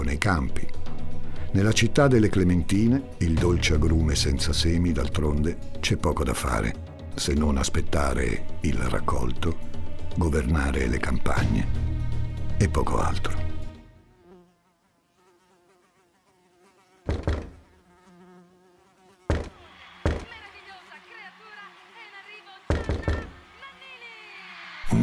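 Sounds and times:
speech: 0.1 - 0.8, 1.5 - 11.9, 12.6 - 13.4
fly buzzing: 13.5 - 24.9
loud sharp knocks: 17.1 - 17.6, 19.3 - 20.4, 22.7 - 23.4.

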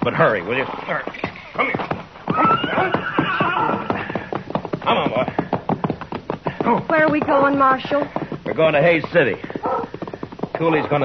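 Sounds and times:
speech: 0.0 - 1.9, 7.1 - 9.5, 10.6 - 11.0
horse hooves clopping: 0.0 - 11.0
gray horse whinnying: 0.8 - 4.3, 9.6 - 9.9.

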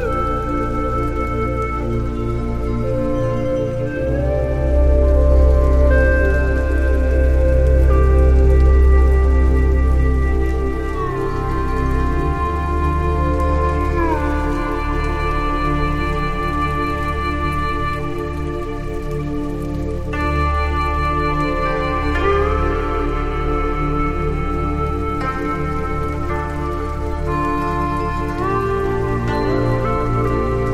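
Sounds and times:
deep steady bass: 0.0 - 30.7
faint soft rain: 0.0 - 30.7
slow Chinese-inspired music with sliding pitch bends: 0.0 - 30.7.

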